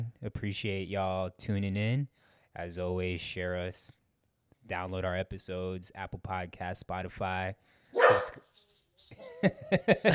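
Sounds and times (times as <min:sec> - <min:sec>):
speech: 0:00.3 - 0:04.0, 0:04.7 - 0:10.1
dog barking: 0:08.0 - 0:08.4
laughter: 0:09.2 - 0:10.1.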